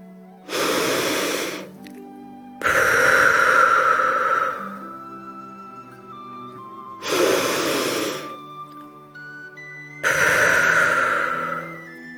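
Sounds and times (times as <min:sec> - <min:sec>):
soft music: 0:00.0 - 0:12.1
deep breaths in through nose and out through mouth: 0:00.5 - 0:01.8, 0:02.6 - 0:06.1, 0:07.0 - 0:08.5, 0:10.0 - 0:12.1.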